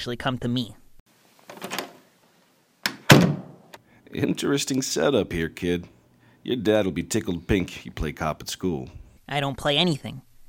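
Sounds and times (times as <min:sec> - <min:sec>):
speech: 0:00.0 - 0:00.8, 0:04.1 - 0:10.3
door opening with a short creaking scrape: 0:01.5 - 0:02.0, 0:02.8 - 0:03.8.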